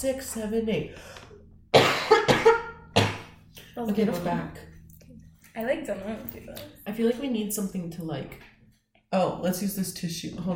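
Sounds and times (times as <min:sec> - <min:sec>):
speech: 0:00.0 - 0:01.3, 0:03.8 - 0:04.7, 0:05.6 - 0:08.5, 0:09.1 - 0:10.5
person coughing: 0:01.7 - 0:03.4.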